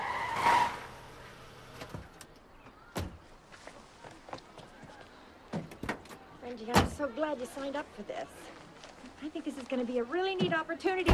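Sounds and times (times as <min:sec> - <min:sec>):
car pulling up with tires squealing: 0:00.0 - 0:01.2
speech: 0:06.6 - 0:08.6, 0:09.2 - 0:11.1.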